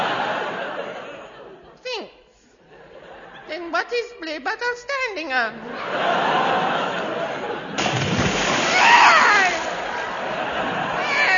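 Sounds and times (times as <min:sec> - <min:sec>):
laughter: 0:00.0 - 0:01.8, 0:02.6 - 0:03.5, 0:05.6 - 0:11.3
speech: 0:03.6 - 0:06.7
splash of someone falling into water: 0:07.8 - 0:10.0
churning sloshing water: 0:07.8 - 0:10.4.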